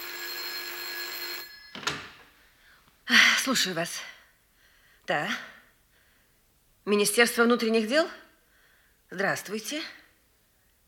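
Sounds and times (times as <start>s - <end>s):
telephone bell ringing in an office reception: 0.0s - 2.3s
speech: 3.4s - 4.1s, 5.1s - 5.5s, 6.9s - 8.2s, 9.1s - 10.0s.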